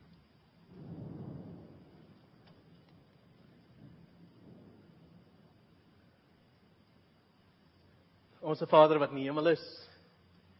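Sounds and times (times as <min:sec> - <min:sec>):
low rumbling swell: 0:00.0 - 0:08.1
steady rain falling outside: 0:00.0 - 0:10.5
speech: 0:08.4 - 0:09.9.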